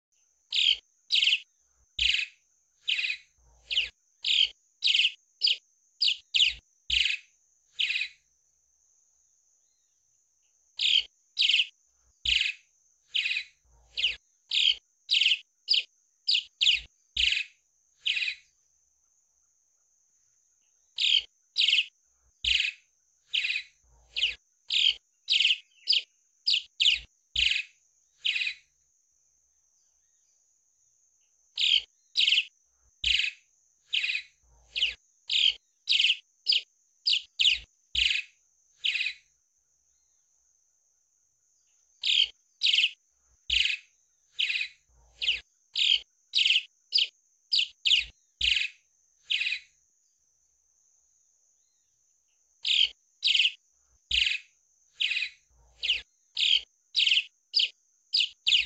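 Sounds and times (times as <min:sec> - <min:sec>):
swallow singing: 0:00.5 - 0:08.2, 0:10.8 - 0:18.4, 0:21.0 - 0:28.7, 0:31.6 - 0:39.2, 0:42.0 - 0:49.8, 0:52.6 - 0:58.6.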